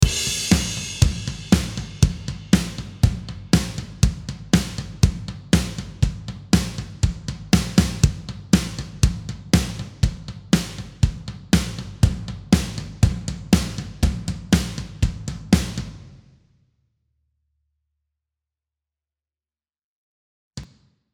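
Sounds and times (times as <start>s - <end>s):
metal drum kit: 0.0s - 16.0s.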